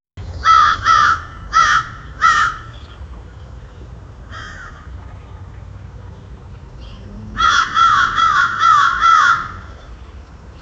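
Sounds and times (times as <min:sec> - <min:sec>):
faint crow calls: 0:00.4 - 0:03.0, 0:04.2 - 0:05.2, 0:06.8 - 0:10.0.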